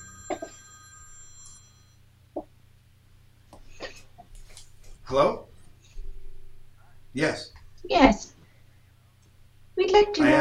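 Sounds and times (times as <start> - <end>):
phone electronic ringtone: 0.0 - 2.0
speech: 5.1 - 5.5, 7.2 - 8.3.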